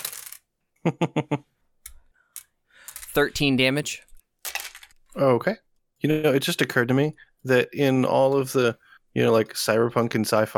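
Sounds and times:
physical dice rolled onto a hard tabletop clattering: 0.0 - 0.5, 4.4 - 5.1
speech: 0.8 - 1.5, 3.2 - 4.1, 5.2 - 10.5.

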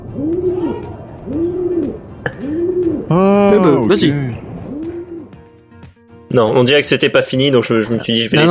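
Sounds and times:
pigeons cooing: 0.0 - 5.4
speech: 0.2 - 2.0, 3.1 - 4.3, 6.3 - 8.4.

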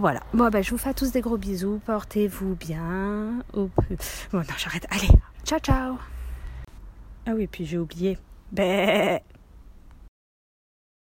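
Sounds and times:
speech: 0.0 - 6.2, 7.2 - 9.4
quiet low rumble: 0.0 - 8.5
single wavering sheep bleat: 8.6 - 9.2.

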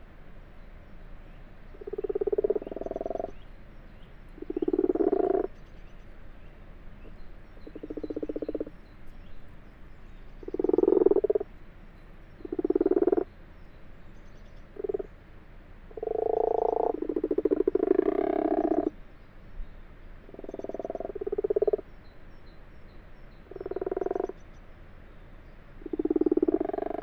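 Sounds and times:
common frogs croaking in a water-filled wash house in France: 1.7 - 3.5, 4.3 - 5.6, 7.0 - 8.9, 10.3 - 11.6, 12.2 - 13.4, 14.6 - 15.3, 15.9 - 19.0, 20.2 - 22.0, 23.4 - 24.5, 25.7 - 27.0.

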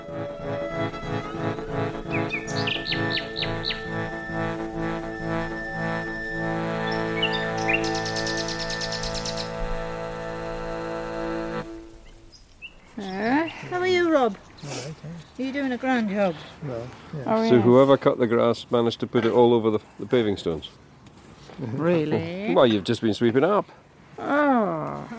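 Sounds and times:
humming tonal backdrop: 0.0 - 13.6
shimmering flurry: 0.0 - 13.7
birds chirping and trilling: 0.0 - 15.4
speech: 15.5 - 20.9, 21.6 - 24.4.

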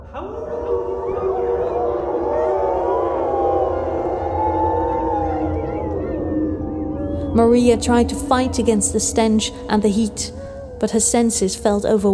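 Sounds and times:
wolf pack howling: 0.0 - 11.6
low rumble: 3.3 - 12.0
speech: 7.4 - 12.1.

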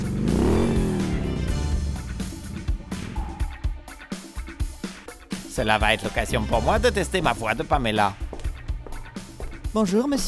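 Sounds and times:
motorcycle engine revving: 0.0 - 3.7
speech: 5.6 - 8.3, 9.7 - 10.2.

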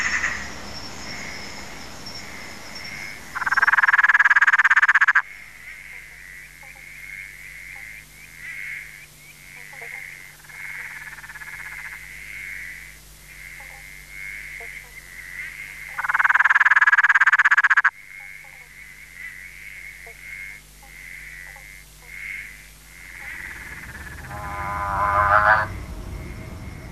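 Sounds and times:
motorbike frog calling: 0.0 - 0.5, 2.2 - 26.8.

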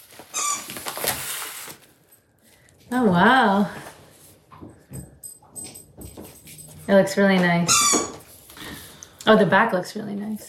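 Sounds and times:
rustling and handling noise: 0.0 - 9.1
dog squeaking a squeaky toy in a kitchen: 0.3 - 0.9, 7.6 - 8.3
speech: 2.9 - 3.9, 6.9 - 8.1, 9.3 - 10.4.

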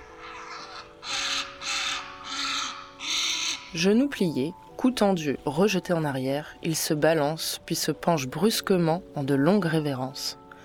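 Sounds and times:
heron giving loud harsh courtship cries from nest: 0.0 - 4.0
speech: 3.7 - 10.4.

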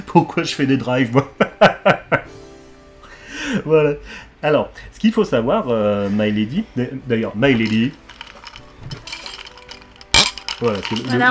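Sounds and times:
speech: 0.1 - 2.0, 3.7 - 8.0, 10.6 - 11.2
laughter: 1.2 - 2.3
ice cubes clinking against a glass: 7.6 - 11.2.

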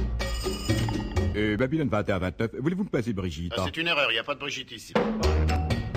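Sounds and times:
telephone bell ringing in metallic trills: 0.2 - 1.3
speech: 1.6 - 5.8.

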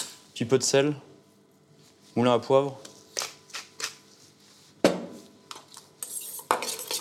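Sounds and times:
speech: 0.4 - 1.1, 2.2 - 2.9
utensils clinking and scraping against a bowl mixing mackerel ceviche: 6.0 - 6.9.

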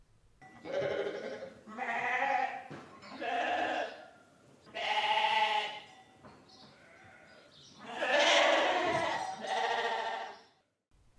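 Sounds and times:
sheep bleating: 0.6 - 2.6, 3.2 - 4.0, 4.7 - 5.9, 6.8 - 10.4.

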